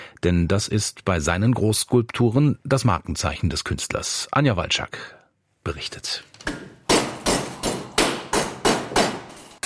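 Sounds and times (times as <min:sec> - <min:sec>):
speech: 0:00.2 - 0:06.8
hammer blows on scrap metal in a small workshop: 0:06.9 - 0:09.5.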